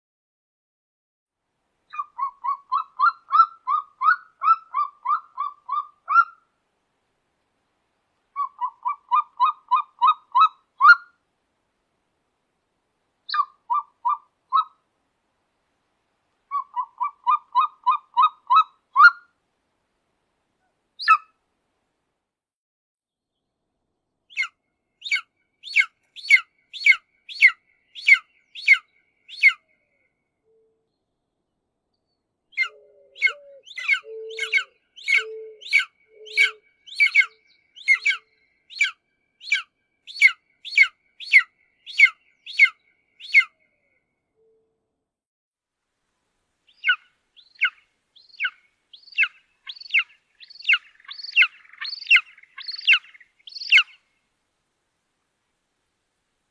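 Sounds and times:
African black eagle calling: 0:01.9 - 0:06.4, 0:08.4 - 0:11.2, 0:13.3 - 0:14.8, 0:16.5 - 0:19.3, 0:24.3 - 0:29.6, 0:32.5 - 0:43.6, 0:46.7 - 0:54.0.

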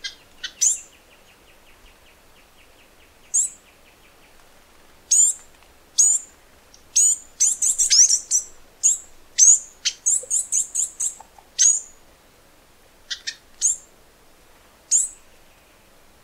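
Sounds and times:
Flame-crested Tanager song of sharp high descending notes: 0:00.0 - 0:04.4, 0:06.0 - 0:12.0, 0:13.1 - 0:13.9, 0:14.9 - 0:15.8.

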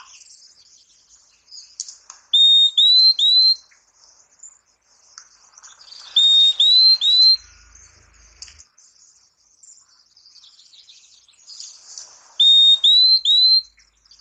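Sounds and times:
purple-throated euphonia song: 0:00.0 - 0:14.2.

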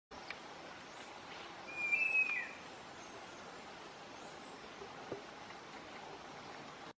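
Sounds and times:
anambe escamoso bird singing: 0:00.8 - 0:04.8.

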